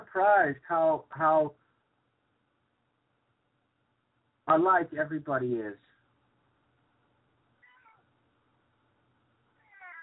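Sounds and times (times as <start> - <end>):
low steady hum: 0.0 - 10.0
speech: 0.2 - 1.6, 4.5 - 5.9
kittens meowing: 7.6 - 8.1, 9.6 - 10.0.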